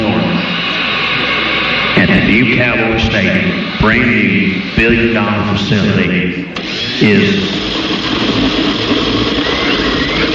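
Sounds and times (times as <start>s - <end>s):
kitchen blender running at full speed: 0.0s - 2.0s, 6.6s - 10.3s
speech: 2.1s - 7.7s.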